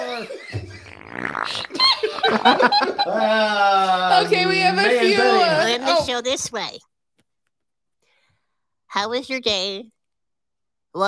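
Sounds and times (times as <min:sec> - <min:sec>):
loud laughter: 0:00.0 - 0:05.3
drawn-out buzzy fart noise rising in pitch: 0:00.5 - 0:02.7
excited voices: 0:01.4 - 0:06.2
speech: 0:02.3 - 0:06.9, 0:08.9 - 0:10.0.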